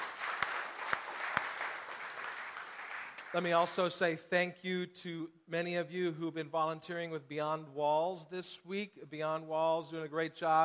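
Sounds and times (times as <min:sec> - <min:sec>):
audience applause: 0:00.0 - 0:03.7
speech: 0:03.3 - 0:10.6.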